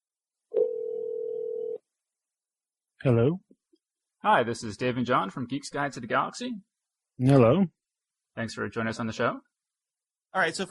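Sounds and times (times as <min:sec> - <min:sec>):
telephone ringing tone: 0:00.5 - 0:01.8
speech: 0:03.0 - 0:03.5, 0:04.2 - 0:07.8, 0:08.4 - 0:09.5, 0:10.3 - 0:10.7.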